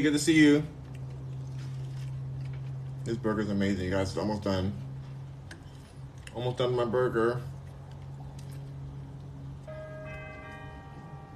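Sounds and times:
speech: 0.0 - 0.8, 3.1 - 4.8, 6.4 - 7.5
low hum: 0.0 - 11.3
bells ringing: 9.6 - 11.3.

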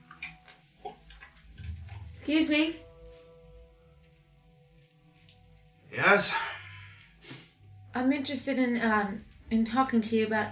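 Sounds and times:
wet clothes being wrung out in water: 0.0 - 2.4
speech: 2.3 - 2.8, 6.0 - 6.5, 8.0 - 10.4.

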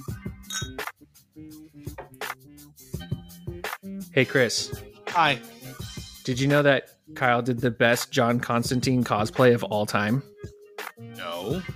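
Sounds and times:
glass bottles clinking together in a toast: 0.4 - 0.9
speech: 4.2 - 5.5, 6.3 - 10.3, 11.5 - 11.7.

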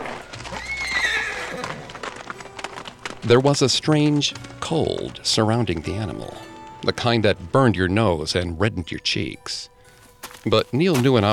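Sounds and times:
soft hoof clatter: 0.0 - 7.4, 9.9 - 11.3
horse neighing: 0.4 - 2.4, 5.6 - 6.6
speech: 3.2 - 9.7, 10.4 - 11.3.

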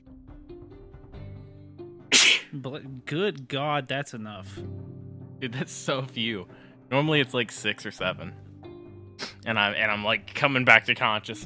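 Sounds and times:
sneeze: 2.1 - 2.5, 9.2 - 9.4
speech: 2.5 - 8.4, 9.4 - 11.4.

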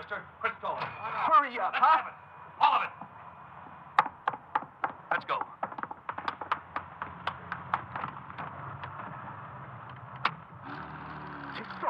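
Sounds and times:
speech: 1.5 - 3.0
sharp irregular clicks and knocks: 4.0 - 9.2, 9.8 - 11.7
getaway car engine turning over and humming: 9.0 - 11.8.

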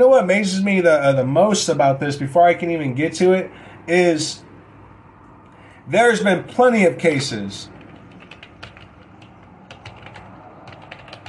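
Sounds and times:
speech: 0.0 - 4.5, 5.9 - 7.8
steady noise: 0.0 - 11.2
typing on a computer keyboard: 7.8 - 11.2.

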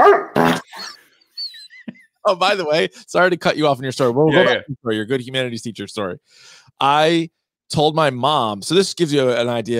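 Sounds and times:
dog bark sound effect from a soundboard: 0.0 - 0.5
speech: 2.3 - 9.7.

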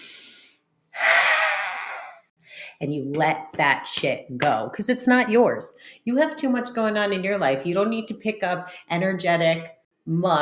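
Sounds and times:
deep breath in during a breathing exercise: 0.0 - 2.7
speech: 2.8 - 10.3.

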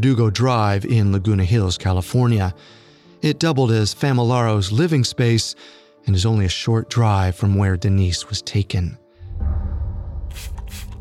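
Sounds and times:
speech: 0.0 - 9.0
hissing spray bursts of liquid onto floor and walls: 10.3 - 10.9.

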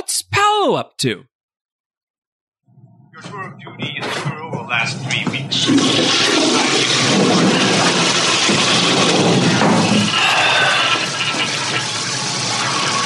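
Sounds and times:
speech: 0.7 - 1.3, 3.2 - 7.7
toilet flushing: 5.4 - 13.0.

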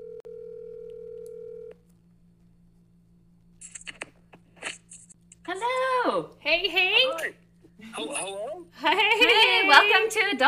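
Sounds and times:
telephone dial tone on a call-in line: 0.0 - 1.7
speech: 6.2 - 7.4, 8.0 - 10.4.

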